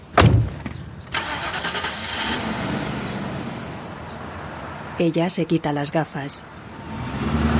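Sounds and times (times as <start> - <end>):
car engine starting and running: 1.0 - 5.0, 6.5 - 7.5
speech: 5.0 - 6.6.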